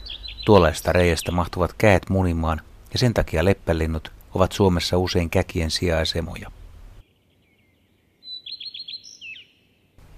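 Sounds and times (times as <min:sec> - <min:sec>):
common redstart singing: 0:00.0 - 0:02.0, 0:07.0 - 0:10.0
speech: 0:00.5 - 0:06.6.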